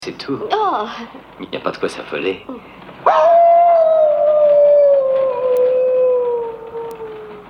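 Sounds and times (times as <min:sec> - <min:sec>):
speech: 0:00.1 - 0:03.5
wolf howling: 0:03.0 - 0:07.4.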